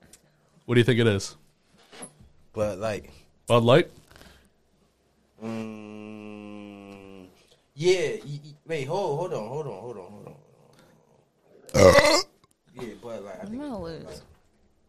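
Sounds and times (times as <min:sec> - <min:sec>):
speech: 0:00.7 - 0:01.4, 0:02.6 - 0:04.0, 0:07.8 - 0:10.3, 0:13.1 - 0:14.3
warbling croaky vocal noises: 0:05.4 - 0:07.5, 0:09.7 - 0:12.3
long belch: 0:11.7 - 0:12.4.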